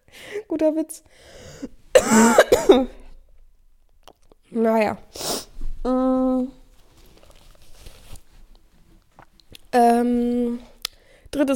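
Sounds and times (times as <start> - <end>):
speech: 0.5 - 3.0, 4.5 - 6.6, 9.7 - 10.7, 11.4 - 11.5
person coughing harshly: 1.9 - 3.1.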